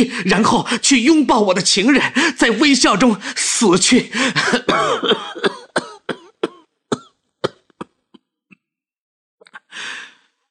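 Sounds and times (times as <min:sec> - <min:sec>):
speech: 0:00.0 - 0:05.5
violent coughing fit: 0:04.2 - 0:08.4.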